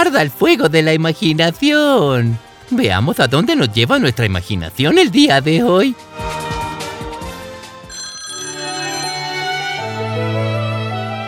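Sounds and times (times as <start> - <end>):
speech: 0.0 - 6.4
telephone ringing for an incoming call: 7.8 - 10.1.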